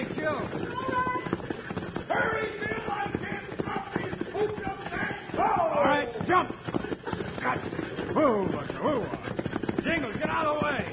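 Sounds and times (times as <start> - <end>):
horse hooves galloping: 0.0 - 10.9
voices calling out and shouting: 0.6 - 1.4, 2.1 - 6.6.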